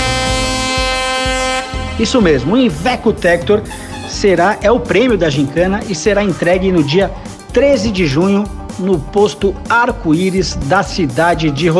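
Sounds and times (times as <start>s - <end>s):
truck air horn blaring: 0.0s - 4.6s
speech: 2.0s - 11.7s.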